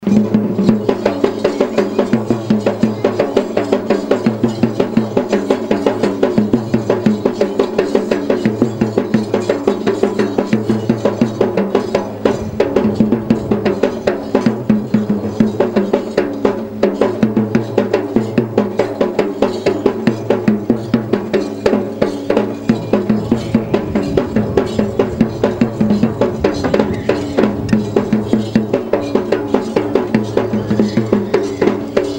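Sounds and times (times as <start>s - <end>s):
Indian drums: 0.0s - 32.1s.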